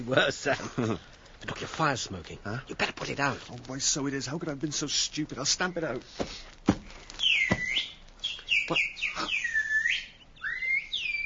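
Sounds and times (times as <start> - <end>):
speech: 0.0 - 7.8, 8.7 - 9.4
person whistling a birdlike call: 7.3 - 11.2.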